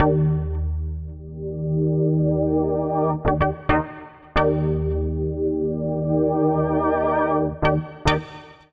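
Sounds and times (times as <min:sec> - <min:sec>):
poly keys music loop in E flat: 0:00.0 - 0:08.2.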